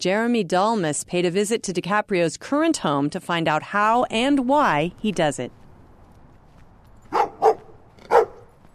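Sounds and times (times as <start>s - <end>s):
speech: 0.0s - 5.6s
guard dog barks: 7.1s - 8.6s.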